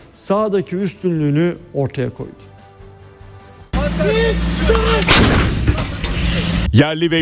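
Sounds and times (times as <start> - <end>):
speech: 0.2 - 2.5, 4.0 - 5.3, 6.8 - 7.1
howitzer artillery fire in a live-fire military exercise: 5.0 - 6.3.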